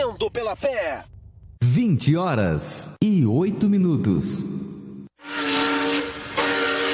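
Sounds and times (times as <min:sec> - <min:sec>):
speech: 0:00.2 - 0:05.4
steam train whistle: 0:05.2 - 0:06.9.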